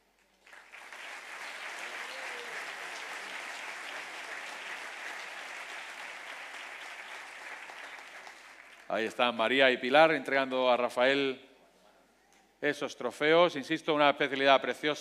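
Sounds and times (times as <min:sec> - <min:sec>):
audience applause at a motorsport slalom championship awards gala: 0:00.4 - 0:08.9
speech: 0:08.9 - 0:11.5, 0:12.6 - 0:15.0.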